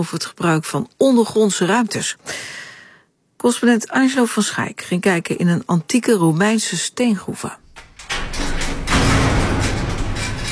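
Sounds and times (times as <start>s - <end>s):
speech: 0.0s - 2.6s, 3.4s - 7.6s
large heavy metal gate grinding and rumbling open: 7.7s - 10.5s.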